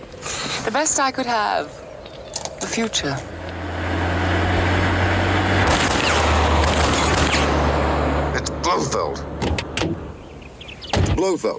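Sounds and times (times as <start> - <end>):
car engine rumbling: 0.0 - 11.2
speech: 0.6 - 1.8, 2.7 - 3.4, 8.8 - 10.0, 11.2 - 11.5
rapid gunfire burst sprayed from a passing car: 5.7 - 7.5.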